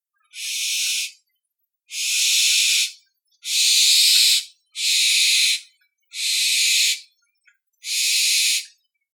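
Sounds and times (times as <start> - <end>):
barn owl chicks calling: 0.3 - 1.2, 1.9 - 7.0, 7.8 - 8.6.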